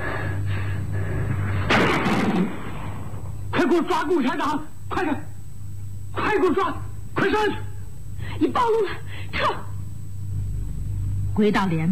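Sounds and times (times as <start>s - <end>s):
low steady hum: 0.0s - 11.9s
gunshot sound effect in a radio drama: 1.4s - 3.2s
speech: 3.6s - 5.3s, 6.2s - 7.6s, 8.4s - 9.7s, 11.4s - 11.9s.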